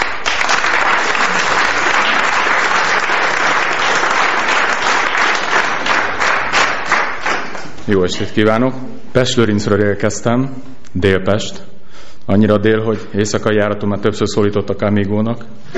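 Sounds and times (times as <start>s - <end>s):
large audience applauding to welcome a comedian: 0.0s - 7.8s
speech: 7.9s - 11.7s, 12.3s - 15.7s.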